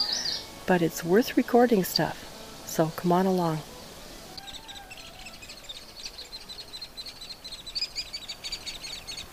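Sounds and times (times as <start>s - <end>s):
baby hairy woodpeckers chittering in a nest hole in an aspen tree: 0.0s - 0.5s, 4.4s - 9.3s
wind: 0.0s - 9.3s
speech: 0.7s - 3.7s.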